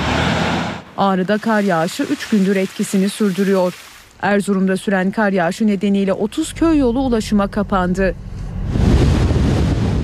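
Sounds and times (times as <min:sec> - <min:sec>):
speech: 0:01.0 - 0:08.3
strong storm wind buffeting the microphone: 0:07.6 - 0:10.0.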